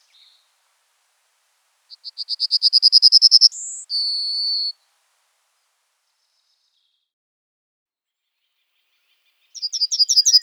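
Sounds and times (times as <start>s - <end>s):
yellowhammer Emberiza citrinella song: 1.9s - 5.0s, 9.5s - 10.4s.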